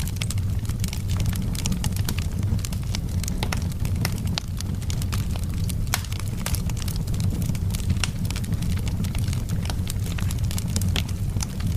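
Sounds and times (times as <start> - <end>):
wood fire crackling inside a house: 0.0 - 11.7.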